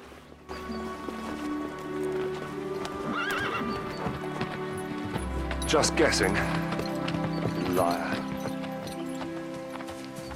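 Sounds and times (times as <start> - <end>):
horse hooves clopping: 0.0 - 10.3
horse whinnying: 3.0 - 4.3
speech: 5.7 - 6.8, 7.8 - 8.2.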